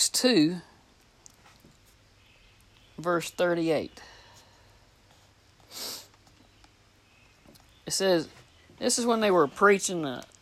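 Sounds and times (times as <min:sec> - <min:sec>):
speech: 0:00.0 - 0:00.7, 0:03.0 - 0:04.1, 0:07.9 - 0:10.3
nasal sniff from someone with the sniffles: 0:05.1 - 0:06.2.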